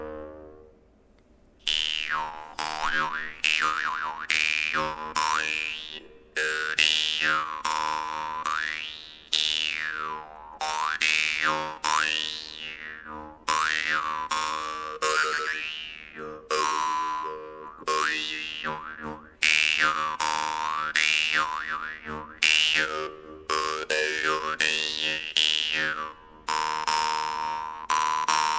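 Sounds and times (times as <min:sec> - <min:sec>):
jaw harp: 0:01.7 - 0:28.5.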